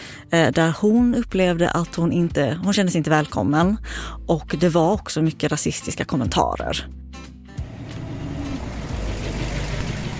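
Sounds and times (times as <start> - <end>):
speech: 0.3 - 7.0
car engine and road noise driving through West Hollywood: 7.5 - 10.1.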